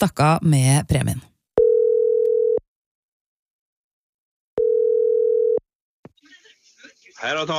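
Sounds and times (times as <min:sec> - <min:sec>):
speech: 0:00.0 - 0:01.3, 0:07.2 - 0:07.5
ringback tones of an outgoing phone call: 0:01.6 - 0:02.6, 0:04.6 - 0:05.6.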